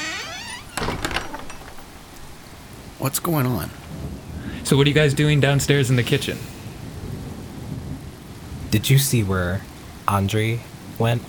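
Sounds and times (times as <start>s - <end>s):
door creaking: 0.0s - 2.6s
speech: 3.0s - 3.8s, 4.7s - 6.5s, 8.7s - 11.2s.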